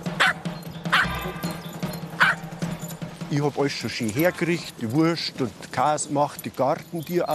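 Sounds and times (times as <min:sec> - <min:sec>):
dachshund barking in short sharp yips: 0:00.2 - 0:01.1, 0:02.2 - 0:02.4
speech: 0:03.3 - 0:07.3.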